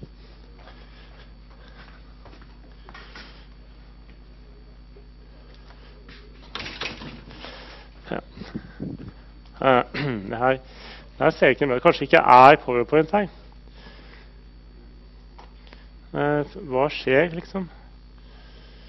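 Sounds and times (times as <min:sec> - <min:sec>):
steady hum: 0:00.0 - 0:18.8
door being shut with rattling handling: 0:06.5 - 0:07.3
speech: 0:09.6 - 0:13.4, 0:16.5 - 0:17.8.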